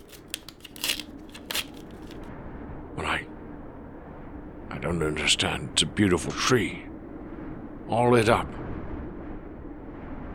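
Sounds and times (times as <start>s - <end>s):
greeting card being opened with papery rustling and crinkling: 0.0s - 2.2s
speech: 4.8s - 6.9s, 7.9s - 8.6s.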